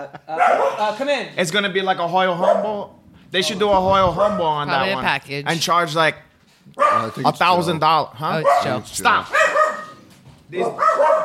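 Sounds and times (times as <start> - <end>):
speech: 0.0 - 9.6, 10.5 - 11.2
dogs barking: 0.3 - 1.0, 2.4 - 2.8, 6.8 - 7.2, 8.3 - 11.2
dog yipping: 6.8 - 7.1, 8.4 - 10.0, 10.6 - 11.2.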